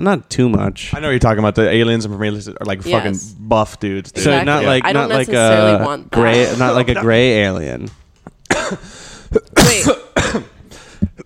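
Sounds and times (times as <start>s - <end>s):
speech: 0.0s - 8.0s, 8.6s - 10.5s
person coughing: 8.5s - 11.2s
throat clearing: 8.5s - 11.2s.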